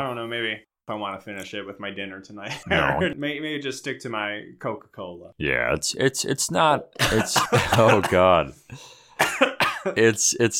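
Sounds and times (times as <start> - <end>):
speech: 0.0 - 10.5
person coughing and sputtering after inhaling a drink's fumes: 7.0 - 8.3, 9.2 - 10.0
wheezy breaths: 8.6 - 9.2.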